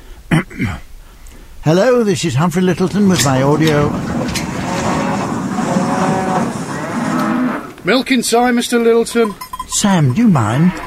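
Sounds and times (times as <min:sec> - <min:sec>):
speech: 0:00.6 - 0:00.9, 0:01.6 - 0:04.2, 0:07.8 - 0:10.8
dense noisy background: 0:01.6 - 0:10.8
cows mooing: 0:02.8 - 0:07.8, 0:10.4 - 0:10.8.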